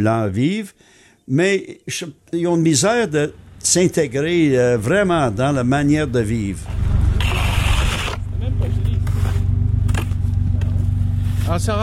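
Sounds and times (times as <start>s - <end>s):
speech: 0.0s - 6.9s, 11.5s - 11.8s
car engine idling: 2.7s - 11.8s
scraping snow off a car: 6.7s - 8.2s, 8.8s - 9.5s, 10.7s - 11.8s.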